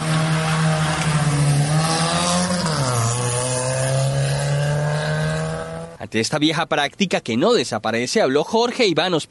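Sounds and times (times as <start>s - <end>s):
speeding car engine roaring in illegal street race: 0.0s - 6.2s
speech: 6.1s - 9.2s.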